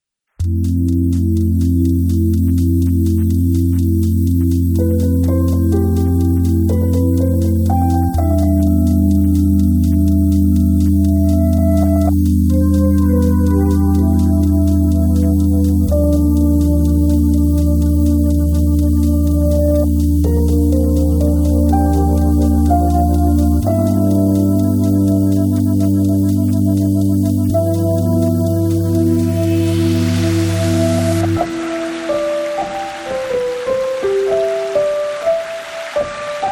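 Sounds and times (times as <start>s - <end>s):
ambient sound: 0.4s - 36.5s.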